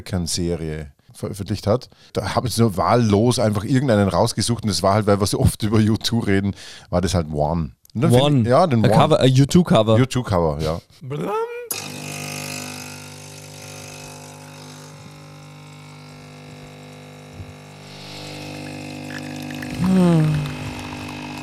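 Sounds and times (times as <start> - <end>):
speech: 0.0 - 11.5
constant humming drone: 11.7 - 21.4
liquid pouring and splashing: 17.7 - 21.4.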